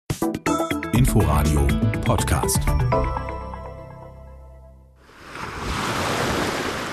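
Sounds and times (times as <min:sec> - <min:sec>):
tonal music: 0:00.2 - 0:05.0
speech: 0:01.2 - 0:03.4
ocean surf rolling onto the shore: 0:05.0 - 0:06.9.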